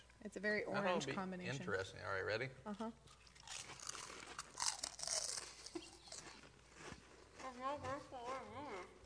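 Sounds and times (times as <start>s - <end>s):
speech: 0.2s - 3.3s, 7.6s - 8.6s
crunching pizza cheddar and buffalo ranch flavored snack chips: 3.2s - 6.4s.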